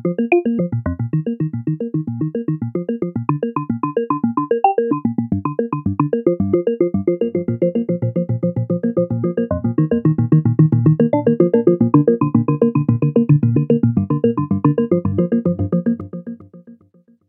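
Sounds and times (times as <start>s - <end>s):
synthesizer arpeggio: 0.2s - 16.3s.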